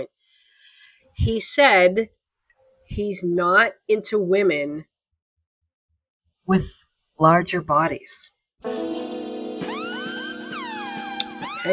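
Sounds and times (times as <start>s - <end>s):
speech: 1.2s - 2.2s, 2.9s - 4.9s, 6.5s - 8.9s
dramatic siren sound-effect sting with wailing tones: 8.7s - 11.7s.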